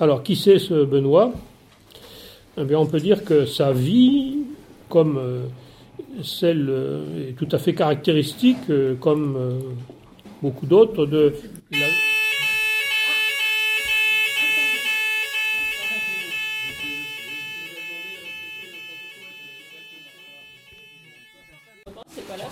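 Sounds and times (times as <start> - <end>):
speech: 0.0 - 1.5, 2.6 - 12.1
steady high-pitched alarm ringing: 11.8 - 21.9.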